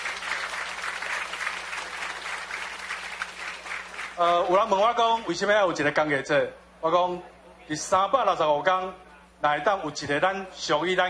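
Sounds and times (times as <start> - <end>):
audience applause: 0.0 - 4.6
speech: 4.2 - 11.0.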